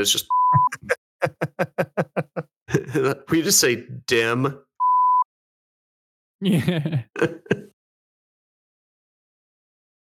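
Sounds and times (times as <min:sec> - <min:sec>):
speech: 0:00.0 - 0:00.4, 0:03.0 - 0:04.6, 0:06.4 - 0:07.7
censor beep, a steady pure tone: 0:00.2 - 0:00.8, 0:04.8 - 0:05.3
person making short nonverbal vocal sounds: 0:00.5 - 0:02.9
laughter: 0:00.5 - 0:03.3, 0:06.4 - 0:07.7.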